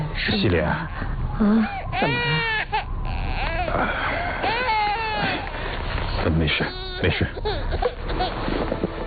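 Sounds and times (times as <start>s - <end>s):
speech: 0.2s - 2.7s, 3.7s - 4.5s, 6.3s - 8.9s
infant crying in high-pitched wails: 1.6s - 5.5s, 6.5s - 8.3s.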